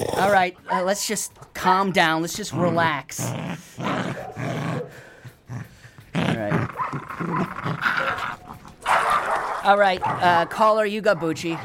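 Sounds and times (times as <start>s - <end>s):
dogs growling and barking: 0.0s - 1.6s, 2.3s - 11.6s
speech: 0.0s - 4.5s, 9.6s - 11.6s.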